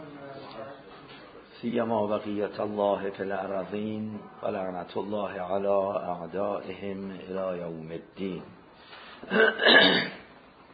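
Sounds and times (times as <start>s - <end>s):
speech: 1.6s - 8.6s, 9.2s - 10.2s
person clearing throat raspily after choking on water: 9.3s - 10.3s.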